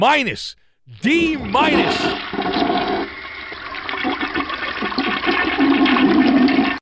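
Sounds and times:
speech: 0:00.0 - 0:02.6
toilet flushing: 0:01.4 - 0:06.8.

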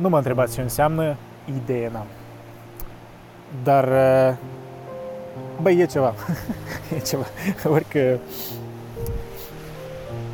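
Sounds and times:
speech: 0:00.0 - 0:02.2, 0:03.5 - 0:04.6, 0:05.4 - 0:09.2
flowing river water: 0:00.0 - 0:10.3
laughter: 0:06.2 - 0:07.6.

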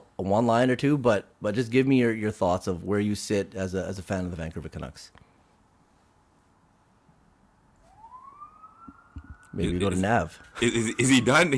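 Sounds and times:
faint hum: 0:00.0 - 0:11.5
speech: 0:00.2 - 0:05.2, 0:09.6 - 0:11.5
police siren wailing: 0:07.9 - 0:10.3.

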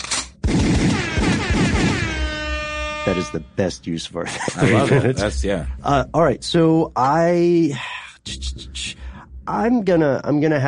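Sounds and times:
sharp gunshot blast: 0:00.4 - 0:02.4
rapid booming gunfire-like thumps: 0:00.4 - 0:02.6
loud air horn blaring: 0:01.0 - 0:03.7
speech: 0:03.1 - 0:10.6
laughter: 0:04.2 - 0:05.6.

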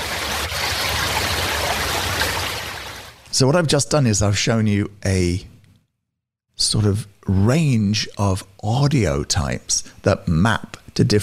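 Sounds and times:
continuous trickling stream of flowing water: 0:00.0 - 0:03.3
speech: 0:03.4 - 0:05.5, 0:06.7 - 0:11.2.

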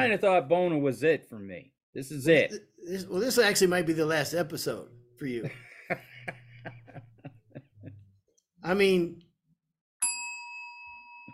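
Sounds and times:
speech: 0:00.0 - 0:06.8, 0:08.6 - 0:09.2
laughter: 0:05.2 - 0:08.2
bright bell ding: 0:10.0 - 0:11.3.

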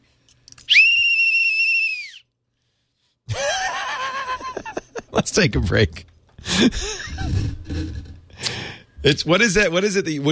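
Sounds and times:
whistle blast: 0:00.7 - 0:02.3
laughter: 0:03.3 - 0:05.3, 0:06.4 - 0:08.1
speech: 0:05.2 - 0:07.6, 0:09.0 - 0:10.3.

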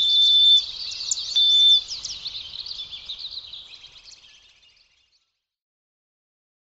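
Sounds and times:
sparrows giving quiet winter calls: 0:00.0 - 0:05.1.

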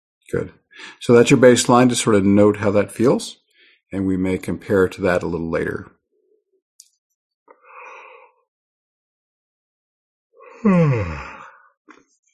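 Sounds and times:
speech: 0:00.3 - 0:06.0, 0:10.6 - 0:11.4
person yawning: 0:10.5 - 0:11.6.

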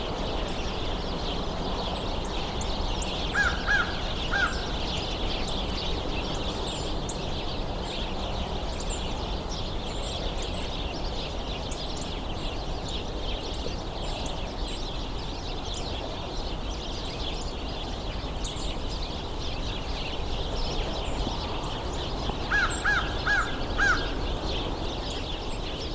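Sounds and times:
large flock of birds chattering: 0:00.2 - 0:25.9
American crow cawing: 0:03.4 - 0:04.7, 0:22.5 - 0:24.2.

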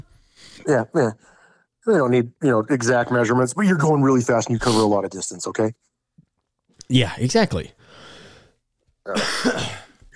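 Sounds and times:
speech: 0:00.6 - 0:05.9, 0:06.9 - 0:08.0, 0:09.0 - 0:10.1
person coughing: 0:09.1 - 0:10.0.

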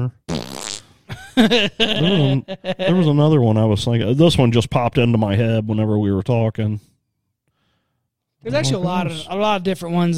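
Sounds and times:
voice imitating buzzy blown fart noises: 0:00.0 - 0:01.0
laughter: 0:01.1 - 0:03.4
speech: 0:01.4 - 0:06.9, 0:08.4 - 0:10.1.

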